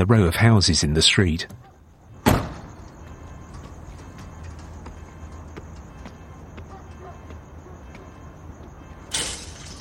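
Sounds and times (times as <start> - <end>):
speech: 0.0 - 1.7
backyard gate opening clack: 9.1 - 9.7.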